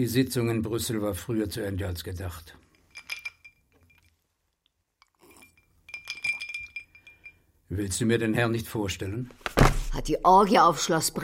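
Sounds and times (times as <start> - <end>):
speech: 0.0 - 2.6, 7.8 - 11.2
whisky glass clinking: 2.7 - 4.2, 5.0 - 7.5.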